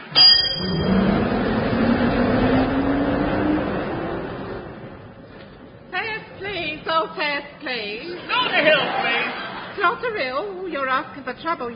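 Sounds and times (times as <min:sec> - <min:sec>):
bus engine revving and pulling away: 0:00.0 - 0:07.5
laughter: 0:07.9 - 0:10.5
speech: 0:10.9 - 0:11.7.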